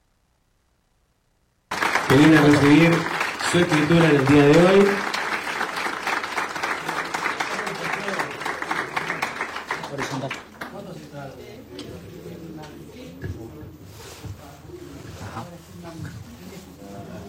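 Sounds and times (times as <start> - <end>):
audience applause at a ceremony in Río Negro province: 1.7 - 10.7
man speaking over a microphone at a property deed ceremony: 2.1 - 5.1
speech: 2.1 - 5.1.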